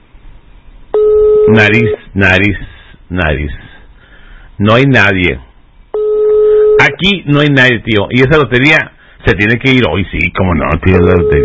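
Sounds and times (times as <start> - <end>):
telephone ringing for an incoming lottery call: 1.0 - 2.0, 6.0 - 6.9, 10.9 - 11.4
speech: 1.5 - 3.7, 4.6 - 5.5, 6.9 - 11.4.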